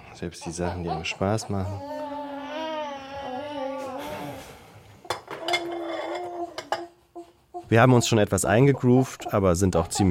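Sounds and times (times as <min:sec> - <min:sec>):
speech: 0:00.2 - 0:02.6, 0:07.7 - 0:10.0
baby's whiny wavering cry: 0:00.3 - 0:04.4, 0:05.3 - 0:08.1
dishes and cutlery clattering during washing up in a small fitted kitchen: 0:05.0 - 0:07.0.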